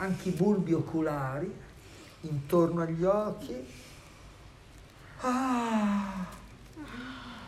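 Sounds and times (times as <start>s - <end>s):
speech: 0.0s - 3.9s, 5.2s - 7.1s
person yawning: 5.2s - 7.4s.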